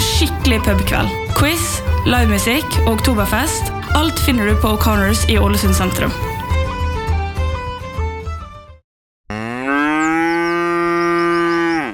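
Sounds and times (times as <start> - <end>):
brief burst of music: 0.0 - 8.8
speech: 0.2 - 6.3
cow mooing on an outfield pasture: 9.3 - 11.9.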